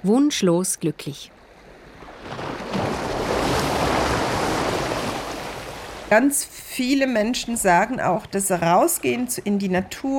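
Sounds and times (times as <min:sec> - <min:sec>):
speech: 0:00.0 - 0:01.4, 0:06.1 - 0:10.1
sea waves breaking on shore: 0:01.3 - 0:06.6.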